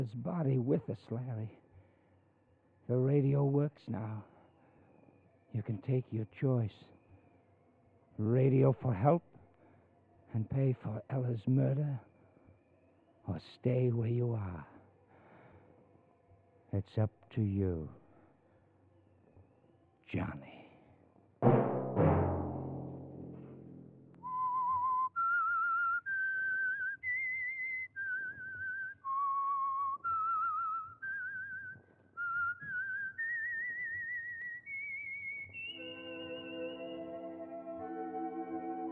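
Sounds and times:
speech: 0.0s - 1.6s, 2.9s - 4.3s, 5.5s - 7.0s, 8.2s - 9.3s, 10.3s - 12.1s, 13.3s - 14.7s, 16.7s - 18.0s, 20.1s - 20.6s
sharp musical hits: 21.4s - 24.2s
whistled theme melody: 24.2s - 38.9s
soft orchestral backing: 35.7s - 38.9s.

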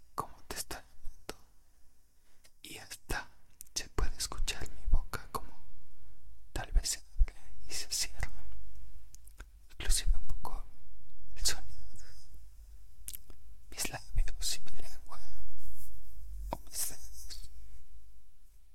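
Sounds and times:
person whispering in ASMR style: 0.0s - 1.5s, 2.6s - 5.7s, 6.5s - 8.6s, 9.3s - 17.6s
mouth clicks: 13.0s - 13.4s.

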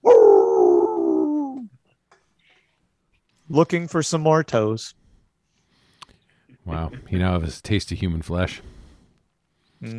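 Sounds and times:
dog howling at night: 0.0s - 1.7s
speech: 3.5s - 5.0s, 6.6s - 8.8s, 9.8s - 9.9s.

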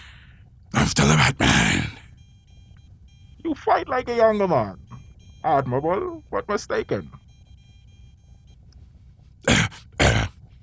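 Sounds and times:
speech: 0.8s - 1.9s, 3.5s - 4.8s, 5.4s - 7.2s
harsh raspy coughs: 0.8s - 2.1s, 9.4s - 10.5s.

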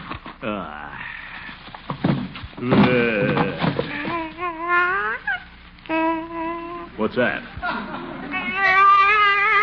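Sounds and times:
speech: 0.4s - 1.0s, 2.6s - 3.1s, 7.0s - 7.7s
baby crying in a car: 3.9s - 6.9s, 8.3s - 9.6s.

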